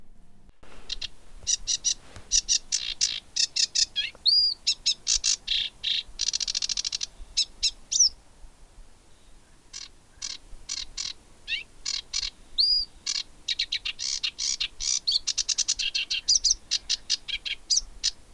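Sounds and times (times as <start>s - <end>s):
marsh warbler song mimicking other birds: 0.8s - 8.2s, 9.2s - 18.3s.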